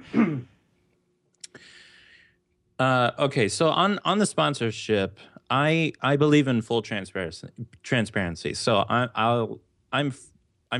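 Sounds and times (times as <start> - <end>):
short rough throat clearing: 0.0 - 0.6
speech: 2.8 - 10.7.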